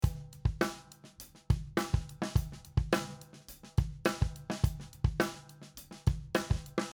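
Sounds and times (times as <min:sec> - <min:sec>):
snare drum with phase cancellation: 0:00.0 - 0:06.9.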